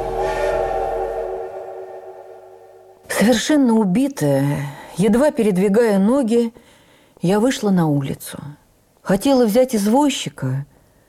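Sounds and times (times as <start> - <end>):
low rumble: 0.0 - 3.0
steam locomotive whistle as train departs: 0.0 - 3.0
speech: 3.2 - 10.7.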